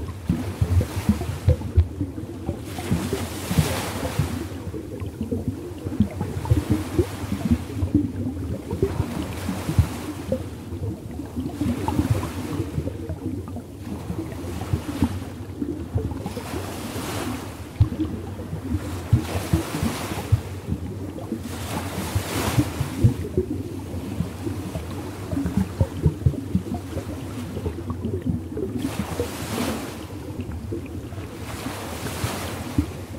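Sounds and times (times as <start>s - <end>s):
natural soothing underwater sounds: 0.0s - 33.1s.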